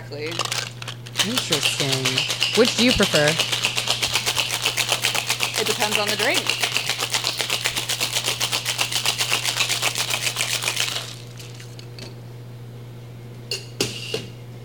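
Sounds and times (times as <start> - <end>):
speech: 0.1 - 3.7, 5.7 - 6.7
bartender rinsing a bar tool: 0.2 - 11.7.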